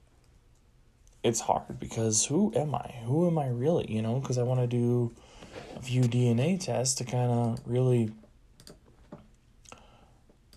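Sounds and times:
speech: 0:01.2 - 0:08.2
typing on a computer keyboard: 0:08.6 - 0:08.9.

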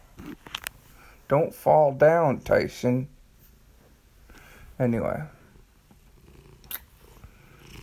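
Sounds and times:
speech: 0:01.3 - 0:03.2, 0:04.8 - 0:05.4
kitten purring: 0:05.9 - 0:07.8.

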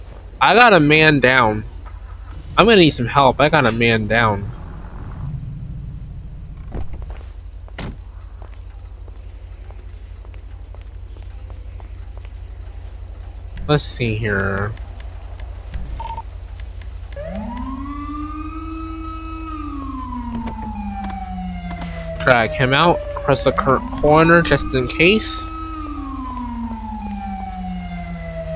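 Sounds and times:
speech: 0:00.4 - 0:01.7, 0:02.6 - 0:04.5, 0:13.7 - 0:14.8, 0:22.3 - 0:25.6
ambulance siren wailing: 0:02.3 - 0:06.5, 0:08.2 - 0:14.8, 0:17.1 - 0:28.5.

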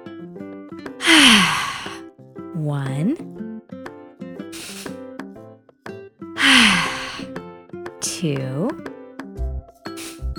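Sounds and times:
long deep breath exhaled as a voiced sigh: 0:01.0 - 0:02.0, 0:06.4 - 0:07.3
speech: 0:02.6 - 0:03.4, 0:08.2 - 0:08.9.

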